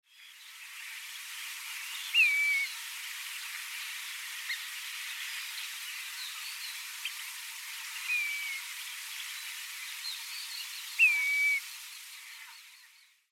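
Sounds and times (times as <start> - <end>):
grey plover calling at Sanbanse: 2.1 - 2.7, 8.0 - 8.7, 10.8 - 11.8.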